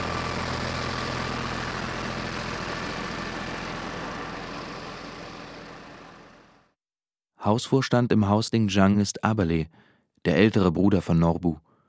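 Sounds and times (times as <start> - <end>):
tractor engine driving a mill: 0.0 - 6.6
speech: 7.4 - 11.6.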